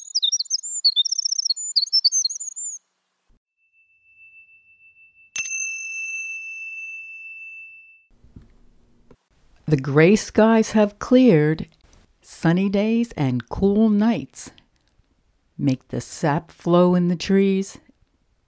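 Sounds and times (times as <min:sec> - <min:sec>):
birds chirping: 0:00.0 - 0:02.8
bright bell-like ding: 0:03.5 - 0:08.1
speech: 0:09.7 - 0:11.8, 0:12.4 - 0:14.6, 0:15.6 - 0:17.8.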